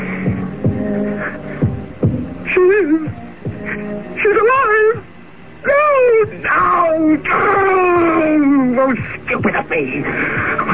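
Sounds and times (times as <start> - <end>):
deep heavy heartbeat thumping: 0.0 - 1.0, 1.6 - 3.8, 10.2 - 10.7
steady low hum: 0.0 - 10.7.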